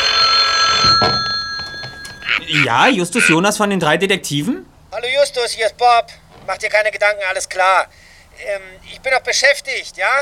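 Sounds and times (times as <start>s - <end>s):
telephone ringing at a central office switchboard: 0.0s - 3.4s
speech: 1.0s - 1.3s, 2.5s - 10.1s.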